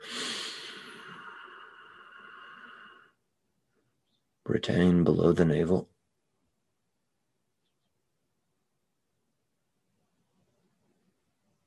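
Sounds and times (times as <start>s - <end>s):
deep breath in: 0.0s - 3.2s
speech: 4.5s - 5.9s.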